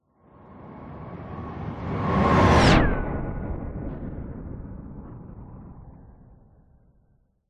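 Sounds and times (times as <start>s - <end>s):
powerful science fiction spacecraft flyby whizzing past fast: 0.6s - 6.0s.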